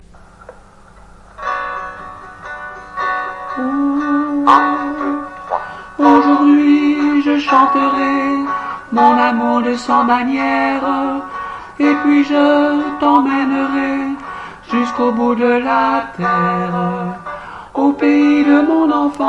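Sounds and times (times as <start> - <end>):
tenor singing chorale: 3.5 - 5.4, 6.0 - 19.2.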